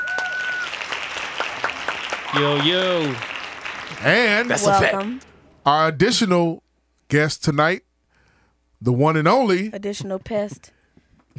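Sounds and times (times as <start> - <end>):
small group clapping: 0.0 - 5.4
speech: 2.3 - 3.3, 4.0 - 7.9, 8.8 - 10.8.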